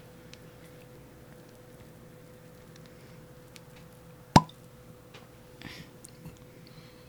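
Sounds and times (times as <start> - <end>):
steady low electrical hum: 0.0 - 7.0
cork popping out of a bottle: 4.4 - 4.6.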